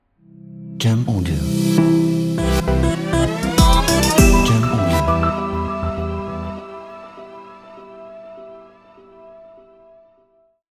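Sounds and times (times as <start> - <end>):
ambient logo music: 1.6 - 9.4.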